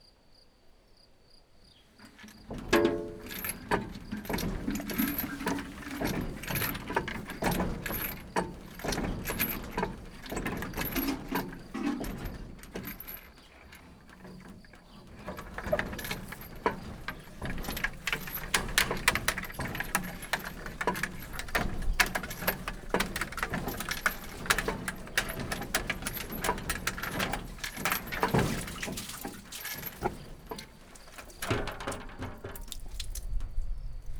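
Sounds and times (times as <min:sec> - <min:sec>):
wheeled well in Varboc: 0:02.0 - 0:33.0.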